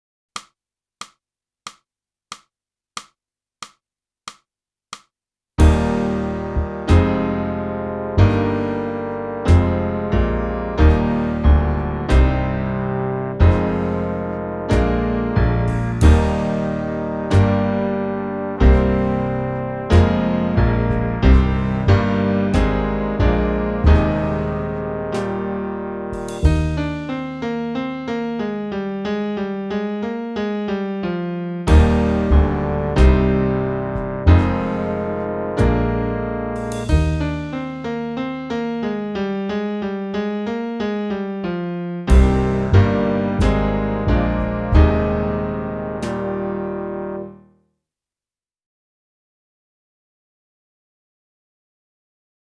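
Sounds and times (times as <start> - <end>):
clarinet: 5.6 - 47.4.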